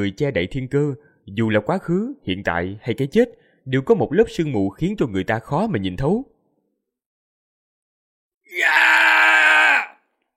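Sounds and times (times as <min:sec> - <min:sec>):
speech: 0:00.0 - 0:06.3, 0:08.5 - 0:08.8
men screaming in agony after being struck by a sword: 0:08.5 - 0:10.0.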